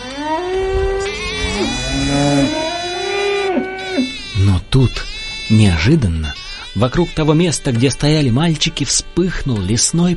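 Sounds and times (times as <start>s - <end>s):
several cows mooing: 0.0s - 4.4s
speech: 4.8s - 10.1s.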